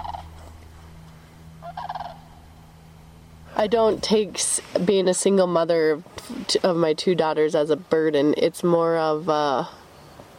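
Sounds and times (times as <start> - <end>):
sandhill cranes calling while flying overhead by the Missouri River on an overcast morning: 0.0 - 4.2
low hum: 0.0 - 6.8
speech: 3.6 - 9.8.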